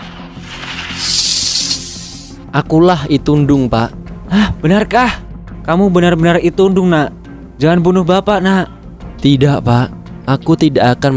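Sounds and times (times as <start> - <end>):
snake hissing: 0.4 - 2.4
speech: 2.5 - 11.1.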